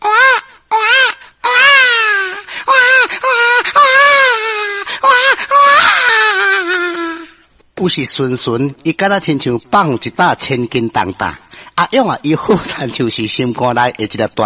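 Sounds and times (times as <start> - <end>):
newborn baby crying: 0.0 - 7.4
speech: 7.8 - 14.4.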